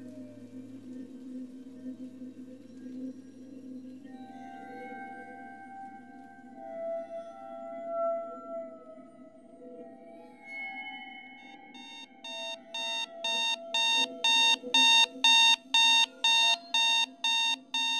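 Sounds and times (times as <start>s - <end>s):
alarm clock electronic beeps: 11.8s - 17.9s.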